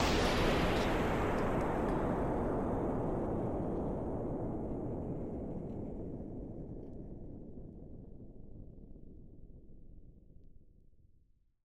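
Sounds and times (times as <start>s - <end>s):
explosion wind blast: 0.0s - 6.6s.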